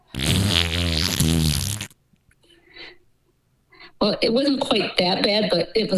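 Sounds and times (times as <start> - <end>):
loud buzzy fart sound effect: 0.0 - 2.0
speech: 4.0 - 5.9.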